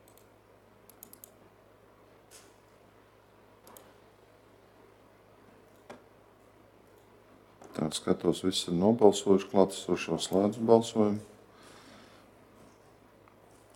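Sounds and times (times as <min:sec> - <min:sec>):
computer keyboard typing during a municipal council committee meeting: 0:00.9 - 0:01.4
speech: 0:07.8 - 0:11.3.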